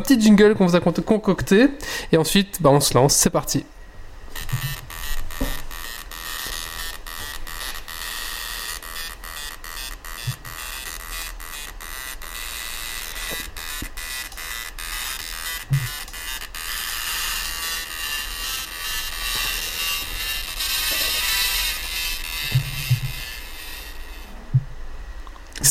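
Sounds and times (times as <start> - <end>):
speech: 0.0 - 3.8, 4.4 - 4.7
old printer motor whirring and buzzing: 4.3 - 24.4.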